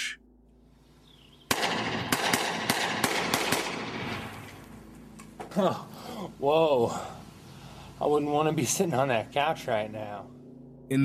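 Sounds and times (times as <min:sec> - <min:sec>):
9mm pistol firing at a couch under a bridge: 0:01.5 - 0:04.4
speech: 0:05.6 - 0:07.2, 0:08.0 - 0:11.0.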